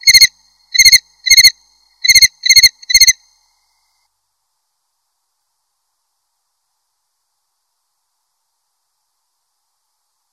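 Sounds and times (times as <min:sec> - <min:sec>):
cricket chirping: 0:00.0 - 0:04.1.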